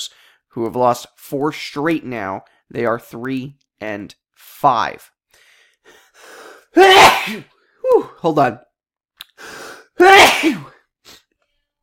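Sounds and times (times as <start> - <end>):
speech: 0.0 - 5.2, 6.8 - 8.7, 10.0 - 10.7
person sneezing: 6.8 - 7.5, 9.4 - 11.3.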